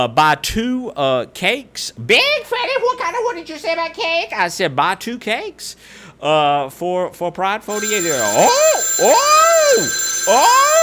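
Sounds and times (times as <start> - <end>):
speech: 0.0 - 10.8
electronic swooping phone ringtone: 7.7 - 10.8.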